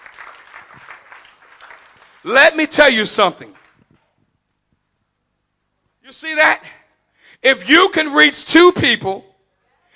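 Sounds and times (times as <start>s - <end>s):
audience clapping: 0.0s - 4.2s
speech: 2.2s - 3.6s, 7.4s - 9.3s.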